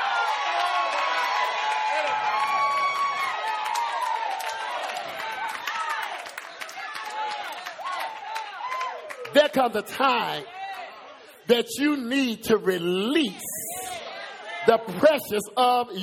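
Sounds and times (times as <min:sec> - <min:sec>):
large audience screaming and yelling: 0:00.0 - 0:09.3
speech: 0:09.5 - 0:10.6, 0:11.5 - 0:13.5, 0:14.6 - 0:16.0.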